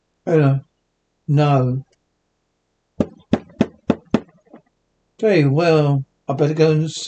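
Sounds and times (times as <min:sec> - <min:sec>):
speech: 0:00.2 - 0:00.7, 0:01.3 - 0:01.9, 0:05.2 - 0:07.0
firm knocking on a wooden basement door: 0:03.0 - 0:04.6.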